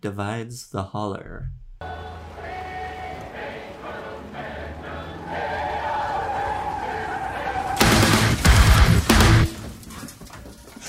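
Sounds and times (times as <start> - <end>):
speech: 0.0 - 2.0
harsh skidding noise: 1.8 - 10.0
brakes screeching: 1.8 - 10.2.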